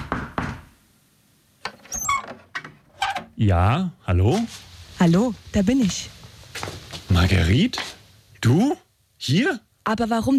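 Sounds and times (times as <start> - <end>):
firm knocks on a door: 0.0 - 0.7
squeaky door creak: 1.6 - 3.4
speech: 3.4 - 10.3.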